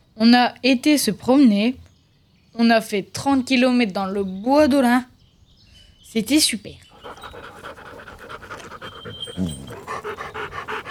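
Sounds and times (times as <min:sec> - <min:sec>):
speech: 0:00.2 - 0:01.8, 0:02.6 - 0:05.1, 0:06.1 - 0:07.2
dog panting rapidly after a long walk: 0:06.9 - 0:10.8.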